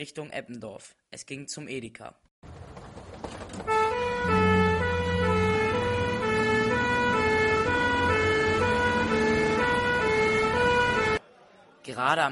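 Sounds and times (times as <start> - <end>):
speech: 0.0 - 2.6, 11.9 - 12.3
low emergency vehicle rumble: 2.4 - 11.2
two-tone emergency vehicle siren: 3.6 - 11.2.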